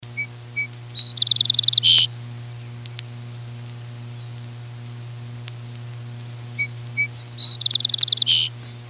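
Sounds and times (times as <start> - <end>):
Song Sparrow song: 0.0 - 3.0, 4.0 - 4.5, 6.5 - 8.8
low electrical hum: 0.0 - 8.8.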